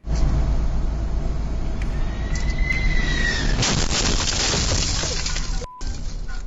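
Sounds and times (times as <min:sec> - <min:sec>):
road and engine rumble of traffic: 0:00.0 - 0:06.4
sharp crack of landing jet's wheel striking a truck: 0:03.4 - 0:05.7.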